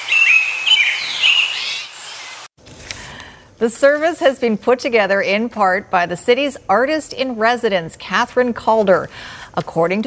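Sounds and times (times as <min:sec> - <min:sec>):
birds chirping and trilling in late spring: 0:00.0 - 0:02.5
speech: 0:03.6 - 0:10.0.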